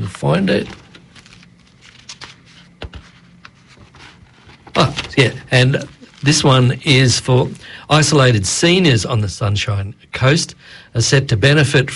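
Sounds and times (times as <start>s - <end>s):
paper rustling and crinkling: 0.0s - 7.6s
quiet handling noise: 0.0s - 7.6s
speech: 0.1s - 0.8s, 5.2s - 11.9s.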